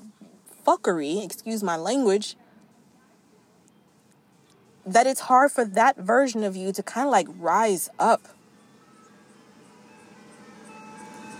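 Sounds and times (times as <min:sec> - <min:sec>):
speech: 0:00.7 - 0:02.4, 0:04.9 - 0:08.4
ice cream truck jingle outside: 0:05.0 - 0:11.3.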